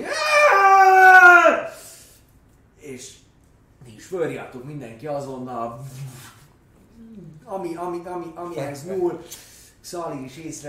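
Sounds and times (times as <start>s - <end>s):
anguished scream with a breaking voice: 0.0s - 1.9s
speech: 4.1s - 6.3s, 7.2s - 10.6s.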